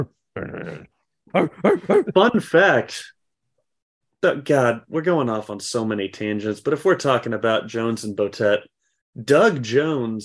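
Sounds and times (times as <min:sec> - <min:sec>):
low vocal sound: 0:00.0 - 0:02.2
person imitating a dog bark: 0:00.0 - 0:02.2
speech: 0:00.0 - 0:03.2, 0:04.2 - 0:10.2
laughter: 0:01.3 - 0:02.6.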